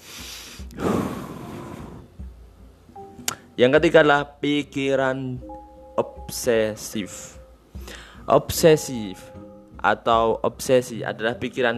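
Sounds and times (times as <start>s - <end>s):
long deep breath in and out: 0.0s - 2.1s, 7.8s - 8.3s
speech: 3.6s - 7.4s, 8.3s - 11.7s.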